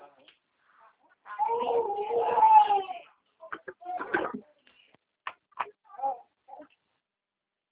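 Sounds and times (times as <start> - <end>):
baby crying: 1.3 - 3.1
baby whimpering and fussing: 1.3 - 3.1, 5.9 - 6.7.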